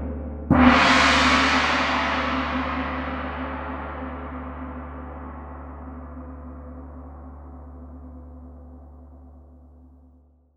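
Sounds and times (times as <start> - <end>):
gong in B strikes: 0.5 - 7.8.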